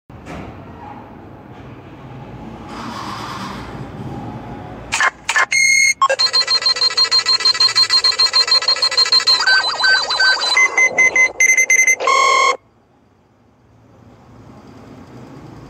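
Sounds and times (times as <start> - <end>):
lie detector: 5.0 - 12.6.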